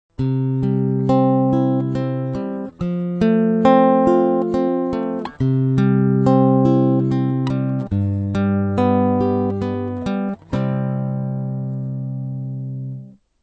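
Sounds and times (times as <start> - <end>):
guitar arpeggio: 0.2 - 13.2.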